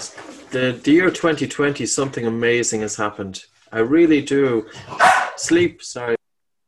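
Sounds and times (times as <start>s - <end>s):
speech: 0.5s - 6.2s
dog barking: 5.0s - 5.4s.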